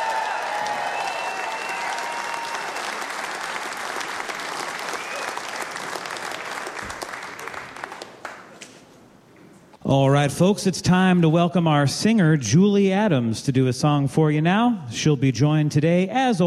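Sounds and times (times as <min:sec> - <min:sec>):
audience applause after a live concert song: 0:00.0 - 0:08.6
speech: 0:09.9 - 0:16.4.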